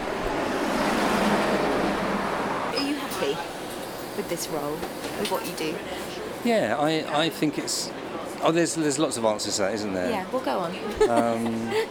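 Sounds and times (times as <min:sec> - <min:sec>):
bus passing by: 0:00.0 - 0:06.4
speech: 0:04.2 - 0:11.8
laughter: 0:10.8 - 0:11.8.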